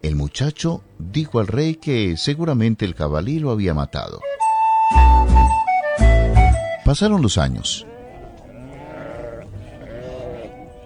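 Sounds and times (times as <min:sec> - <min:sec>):
speech: 0:00.0 - 0:06.2, 0:06.9 - 0:07.9
flock of sheep bleating on a bridge: 0:07.6 - 0:10.8.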